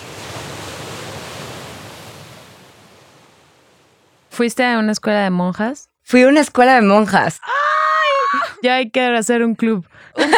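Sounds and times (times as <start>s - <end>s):
ocean waves washing as surf: 0.0s - 4.4s
speech: 4.4s - 7.6s, 8.6s - 10.3s
laughter: 10.2s - 10.3s.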